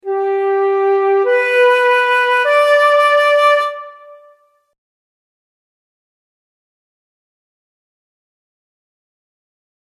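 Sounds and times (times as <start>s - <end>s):
flute: 0.0s - 4.7s.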